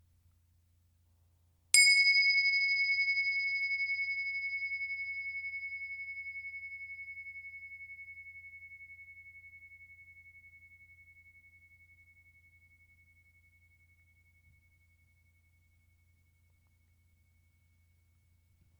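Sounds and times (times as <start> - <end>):
meditation bell struck, clear metallic tone ringing: 1.8 - 13.1.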